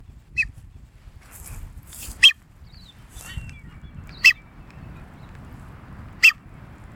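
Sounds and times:
masked booby calling: 0:03.3 - 0:04.5, 0:06.2 - 0:06.5.

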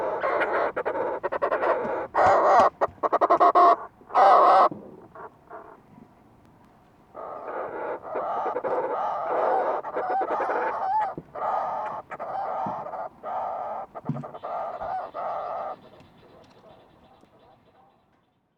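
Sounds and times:
fulmar prion giving harsh throaty pulsed cackling calls: 0:00.0 - 0:05.8, 0:07.2 - 0:17.9
speech: 0:00.7 - 0:01.2.

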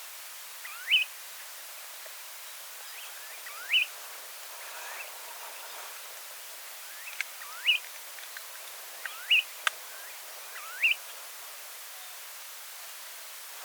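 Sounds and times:
steady hiss of background noise: 0:00.0 - 0:13.6
Snowy plover giving short rising whistled calls: 0:00.6 - 0:01.1, 0:02.8 - 0:07.9, 0:08.5 - 0:12.4.

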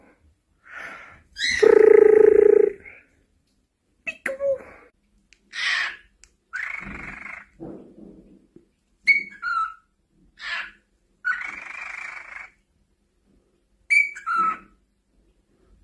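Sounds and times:
cockatiel: 0:01.4 - 0:02.7, 0:05.5 - 0:07.6, 0:09.0 - 0:12.6, 0:13.9 - 0:14.8.

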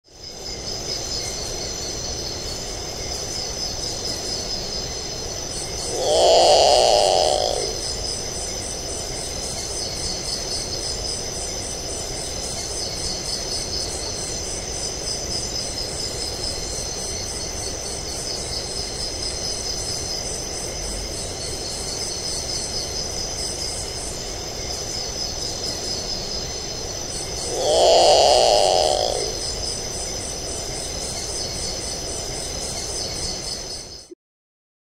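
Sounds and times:
Nyctibius potoo calling: 0:05.9 - 0:07.8, 0:27.4 - 0:29.4.

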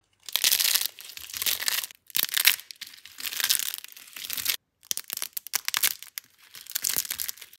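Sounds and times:
chalky soap being crushed: 0:00.2 - 0:07.5.

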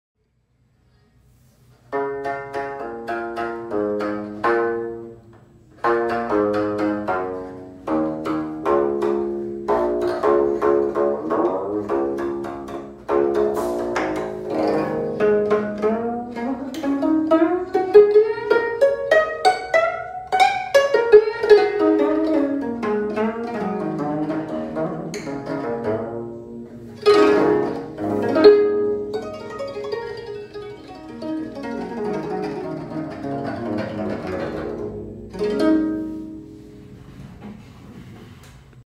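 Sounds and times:
Korean geomungo zither playing: 0:01.9 - 0:37.2.

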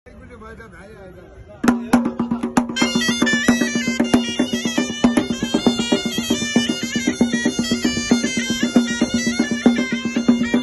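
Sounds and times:
snake charmer flute: 0:02.1 - 0:10.6.

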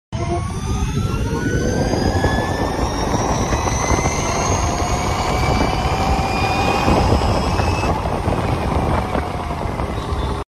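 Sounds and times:
electric scooter: 0:00.2 - 0:10.4.

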